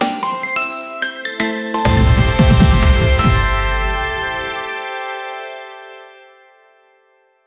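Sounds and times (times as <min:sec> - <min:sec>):
bright punchy news jingle: 0:01.8 - 0:06.0.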